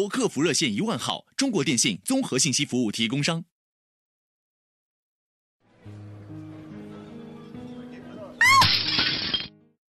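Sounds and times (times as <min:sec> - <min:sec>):
speech: 0:00.0 - 0:03.5
ceramic plate shattering: 0:08.4 - 0:09.6.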